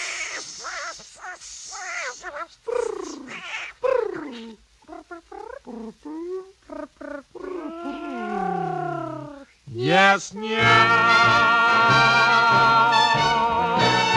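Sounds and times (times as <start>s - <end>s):
speech: 1.4s - 8.0s, 9.8s - 12.6s
person imitating a cat singing meows in a song: 7.6s - 14.0s.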